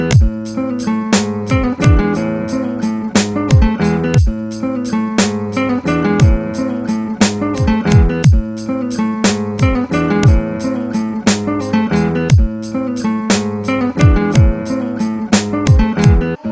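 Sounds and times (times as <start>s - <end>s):
Croatian beat at 118 bpm: 0.1s - 16.4s.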